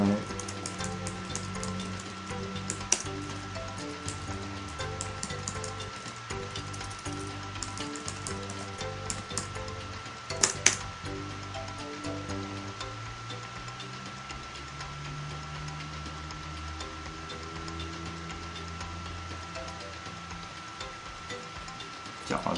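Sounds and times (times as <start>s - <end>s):
steady low music: 0.0s - 22.5s
keyboard typing: 0.3s - 2.1s, 3.7s - 10.8s.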